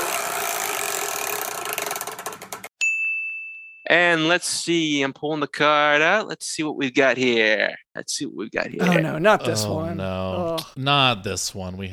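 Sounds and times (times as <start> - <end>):
giant prize wheel spinning with ratchet clicking: 0.0 - 2.7
bright high ding: 2.8 - 3.9
speech: 3.9 - 11.9.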